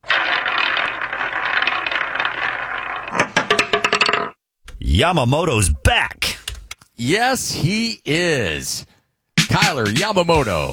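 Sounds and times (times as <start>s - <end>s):
roulette wheel spinning: 0.0s - 4.4s
speech: 5.0s - 6.2s, 7.0s - 8.9s, 9.5s - 10.7s.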